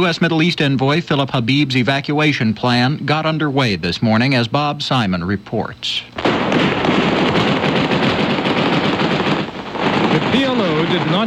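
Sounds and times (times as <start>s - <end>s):
speech: 0.0s - 7.5s, 10.3s - 11.2s
dense continuous gunfire across a city: 6.2s - 11.2s.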